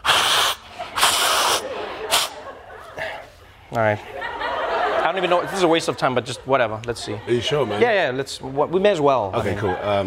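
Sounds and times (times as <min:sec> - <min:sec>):
person blowing nose: 0:00.0 - 0:02.4
laughter: 0:00.6 - 0:10.0
speech: 0:03.7 - 0:04.2, 0:05.1 - 0:10.0.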